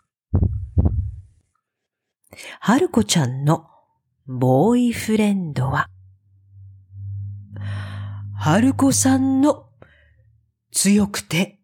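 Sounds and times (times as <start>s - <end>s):
deep heavy pounding heartbeat thumps: 0.3s - 1.2s
speech: 2.4s - 3.7s, 4.3s - 5.9s, 8.4s - 9.7s, 10.7s - 11.6s.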